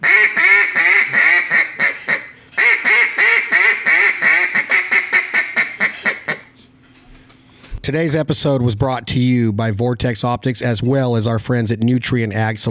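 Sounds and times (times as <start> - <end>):
hand-blown duck call chattering quacks: 0.0 - 6.5
speech: 7.9 - 12.6.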